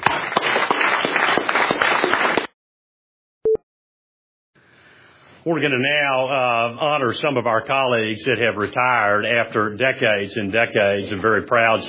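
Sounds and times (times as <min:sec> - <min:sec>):
audience clapping at an agency ceremony honoring colleagues: 0:00.0 - 0:02.5
speech: 0:05.4 - 0:11.8.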